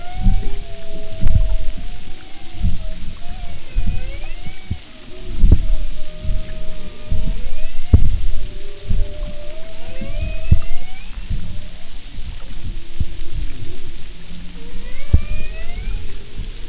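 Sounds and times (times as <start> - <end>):
hissy underwater background: 0.0 - 16.6
humpback whale song with tonal moans and rising whistles: 0.0 - 16.6
sharp low underwater thumps and pulses: 0.0 - 16.6.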